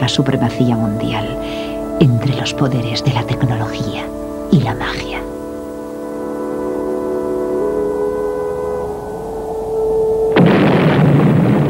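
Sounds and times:
speech: 0:00.0 - 0:05.4
steady droning tone: 0:00.0 - 0:10.8
atomic fireball explosion: 0:10.3 - 0:11.6.

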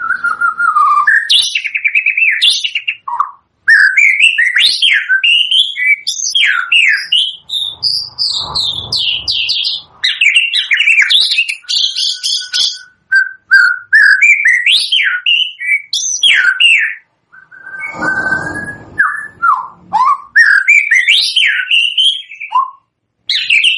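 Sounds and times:
white-rumped shama lure song with varied whistles and chattering notes: 0:00.0 - 0:23.7
low rumble: 0:17.5 - 0:20.0.

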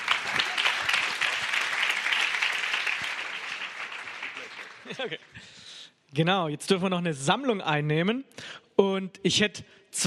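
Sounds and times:
audience applauding at a church conference: 0:00.0 - 0:05.4
speech: 0:04.9 - 0:10.0.

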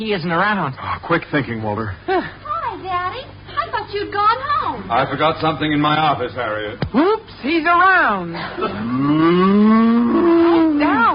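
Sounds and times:
speech: 0:00.0 - 0:02.4, 0:03.1 - 0:09.8
cow mooing: 0:08.8 - 0:11.1.

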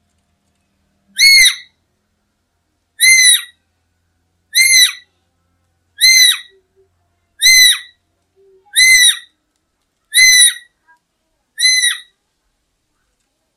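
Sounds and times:
black-capped lory harsh screeching calls: 0:01.2 - 0:01.7, 0:03.0 - 0:03.6, 0:04.5 - 0:05.1, 0:06.0 - 0:06.6, 0:07.4 - 0:08.0, 0:08.7 - 0:09.3, 0:10.1 - 0:10.8, 0:11.6 - 0:12.1.

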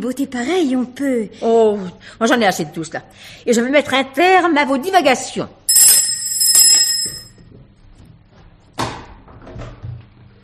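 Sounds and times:
speech: 0:00.0 - 0:05.6
small hand bell ringing to summon a servant: 0:05.7 - 0:07.3.

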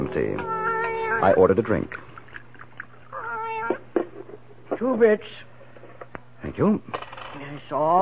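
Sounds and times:
cat meowing: 0:00.0 - 0:01.5, 0:03.1 - 0:03.8
steady low hum: 0:00.0 - 0:08.0
speech: 0:01.2 - 0:02.1, 0:04.8 - 0:05.5, 0:06.4 - 0:07.0, 0:07.6 - 0:08.0.

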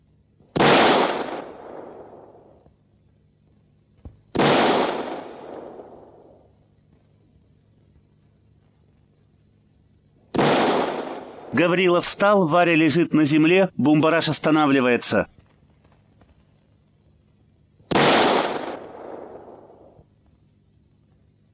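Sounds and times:
pistol shots: 0:00.5 - 0:02.4, 0:04.3 - 0:06.2, 0:10.3 - 0:11.5, 0:17.9 - 0:19.9
speech: 0:11.6 - 0:15.4.

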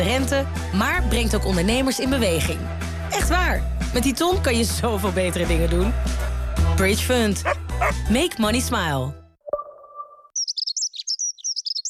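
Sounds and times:
speech: 0:00.1 - 0:09.2
dunnock (hedge sparrow) chirping and warbling: 0:10.0 - 0:11.8.

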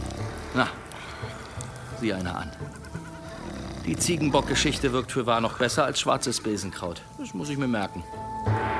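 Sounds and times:
horse neighing: 0:00.0 - 0:05.1
speech: 0:00.6 - 0:01.4, 0:02.0 - 0:02.8, 0:03.9 - 0:08.6.

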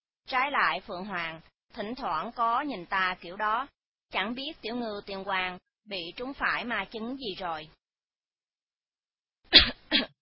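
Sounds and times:
speech: 0:00.3 - 0:07.8
light cough outside a door: 0:09.5 - 0:10.2.

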